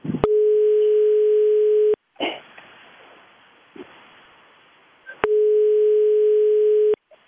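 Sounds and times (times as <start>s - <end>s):
telephone line tone while a call is placed: 0.2s - 2.0s, 5.2s - 7.0s.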